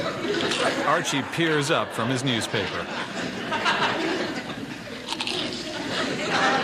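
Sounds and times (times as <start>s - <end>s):
faint murmur: 0.0s - 6.6s
laughter: 0.0s - 6.6s
speech: 0.9s - 3.7s
potato chips crunching while being chewed: 5.0s - 5.6s.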